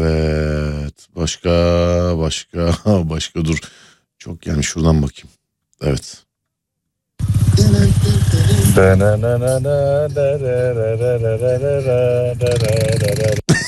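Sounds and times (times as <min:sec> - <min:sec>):
speech: 0:01.2 - 0:06.2, 0:07.2 - 0:13.6
motorcycle engine revving: 0:07.2 - 0:10.4, 0:12.0 - 0:13.4.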